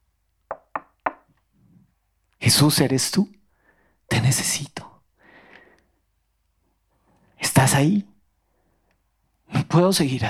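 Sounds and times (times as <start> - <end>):
firm knocking on a door: 0.5 - 1.3
speech: 2.5 - 3.4, 7.7 - 8.1, 9.7 - 10.2.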